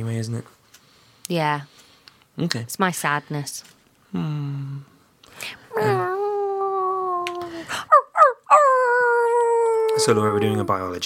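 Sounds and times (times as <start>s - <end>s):
speech: 0.0s - 0.6s, 1.3s - 1.8s, 2.4s - 6.1s, 10.0s - 11.0s
person imitating dog whimpering: 5.7s - 10.9s.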